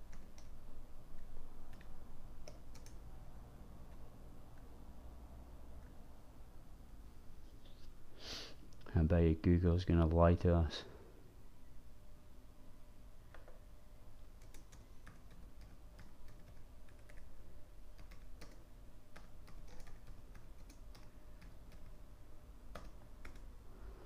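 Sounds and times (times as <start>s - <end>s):
typing on a computer keyboard: 0.0s - 0.6s, 1.7s - 3.0s, 14.4s - 17.3s, 17.9s - 22.0s, 22.7s - 23.5s
faint steady hum: 0.0s - 24.0s
speech: 9.0s - 10.9s.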